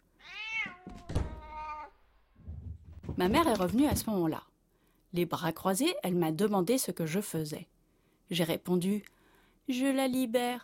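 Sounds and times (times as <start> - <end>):
cat meowing at a door: 0.2 - 2.0
speech: 3.2 - 4.5, 5.1 - 7.7, 8.3 - 10.6.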